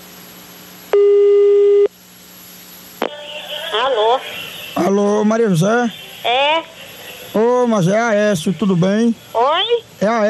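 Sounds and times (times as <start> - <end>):
telephone ringback tone while a call connects: 1.0 - 1.9
speech: 3.8 - 10.2.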